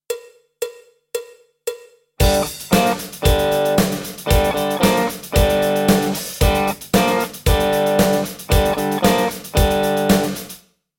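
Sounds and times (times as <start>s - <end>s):
rock lick on electric guitar: 2.2s - 10.6s.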